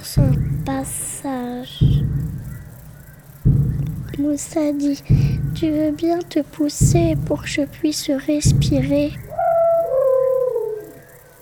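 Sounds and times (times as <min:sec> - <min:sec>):
speech: 0:00.2 - 0:01.8, 0:04.2 - 0:09.2
elephant trumpet call sliding down in pitch: 0:09.3 - 0:11.0.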